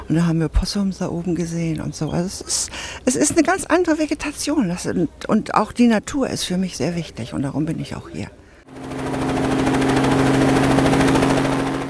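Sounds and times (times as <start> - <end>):
speech: 0.1 - 8.4
helicopter engine droning in flight: 8.6 - 11.8.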